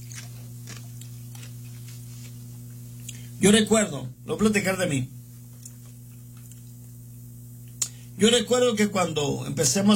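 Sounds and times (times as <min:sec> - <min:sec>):
person chewing ice: 0:00.0 - 0:02.0
steady low electrical hum: 0:00.0 - 0:09.9
speech: 0:03.4 - 0:05.2, 0:08.2 - 0:09.9.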